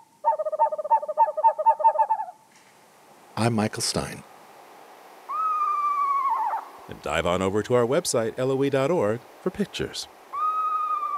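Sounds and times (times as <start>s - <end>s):
screech owl calling in a quavering trill: 0.0s - 2.4s, 5.3s - 6.9s, 10.3s - 11.1s
speech: 3.4s - 4.3s, 7.0s - 10.2s.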